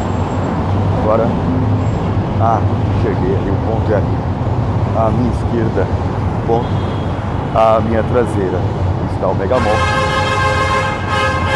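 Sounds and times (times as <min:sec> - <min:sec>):
rumble of street traffic: 0:00.0 - 0:11.5
speech: 0:01.1 - 0:01.7, 0:02.4 - 0:04.3, 0:04.9 - 0:07.0, 0:07.6 - 0:10.0
bus horn blaring: 0:09.5 - 0:11.5.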